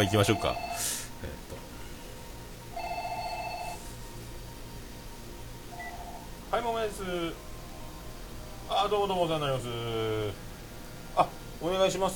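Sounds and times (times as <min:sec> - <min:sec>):
telephone ringing with a warbling electronic trill: 0:00.0 - 0:01.0, 0:02.7 - 0:03.8
speech: 0:00.0 - 0:01.3, 0:06.5 - 0:07.5, 0:08.7 - 0:10.5, 0:11.2 - 0:12.1
faint hum: 0:00.0 - 0:12.1.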